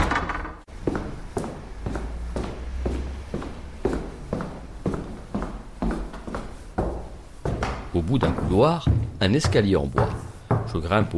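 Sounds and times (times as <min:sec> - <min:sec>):
entrance door of a 19th-century building thudding open: 0:00.0 - 0:00.7
firm footsteps on a hard woody floor: 0:00.7 - 0:11.1
speech: 0:08.1 - 0:11.1.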